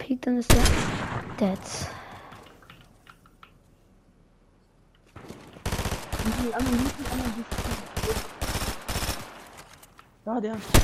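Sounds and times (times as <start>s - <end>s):
speech: 0.2s - 2.0s, 6.4s - 8.4s, 10.3s - 10.8s
gunfire bursts in a ranked duo shooter video game match: 0.5s - 1.6s, 5.6s - 9.7s, 10.6s - 10.8s.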